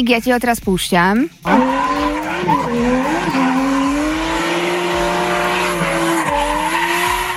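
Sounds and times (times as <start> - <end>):
speech: 0.0 - 3.4
drifting car tire squeal: 1.4 - 7.3
loud drifting car engine roar: 1.4 - 7.3.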